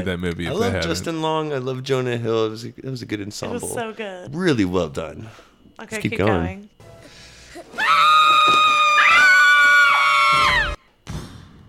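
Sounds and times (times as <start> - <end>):
speech: 0.0 - 6.8
loud sustained scream from a movie clip: 7.7 - 10.8.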